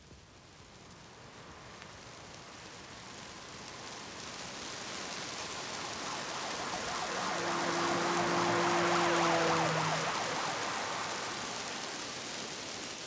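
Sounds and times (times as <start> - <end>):
steady rain hissing: 0.3 - 13.0
car engine humming and whining as it passes: 5.2 - 12.4.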